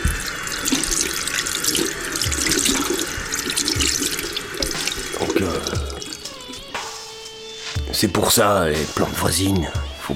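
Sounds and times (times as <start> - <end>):
water running from a tap into a sink refilling a glass: 0.0 - 7.0
speech: 8.0 - 10.1.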